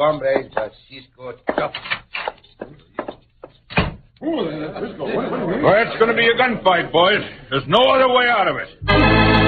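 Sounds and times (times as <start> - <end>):
speech: 0.0 - 2.7, 4.2 - 9.3
hollow footsteps: 1.4 - 4.1
door swinging shut as people leave: 3.7 - 4.1
laughter: 4.3 - 7.0.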